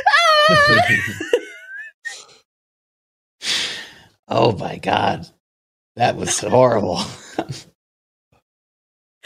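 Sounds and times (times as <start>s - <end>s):
voice imitating the scream of a sphinx cat: 0.1s - 1.1s
laughter: 0.3s - 1.9s, 6.1s - 7.7s
speech: 0.5s - 1.4s, 4.3s - 7.7s.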